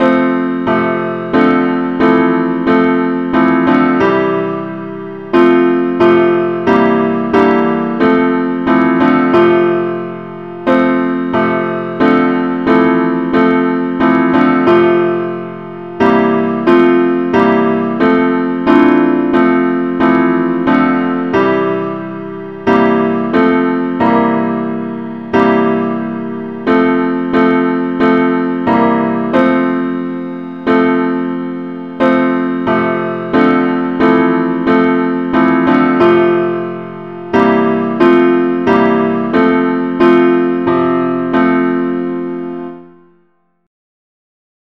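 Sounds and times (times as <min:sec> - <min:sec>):
musical accompaniment in key F: 0:00.0 - 0:42.8.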